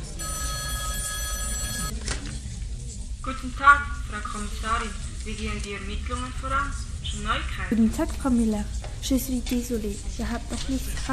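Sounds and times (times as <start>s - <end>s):
telephone ringing with an incoming call: 0.2s - 1.9s
speech: 3.4s - 11.1s.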